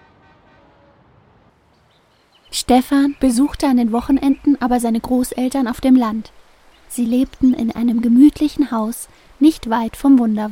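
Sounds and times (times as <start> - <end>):
short car horn toots: 0.0 - 1.1
dense traffic noise of cars and buses in a big city: 0.0 - 9.0
speech: 2.5 - 10.5.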